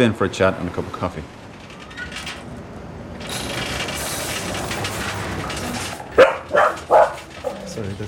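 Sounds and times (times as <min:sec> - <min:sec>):
speech: 0:00.0 - 0:01.4, 0:07.8 - 0:08.0
rattling noise: 0:00.0 - 0:08.0
dog barking: 0:06.2 - 0:07.7.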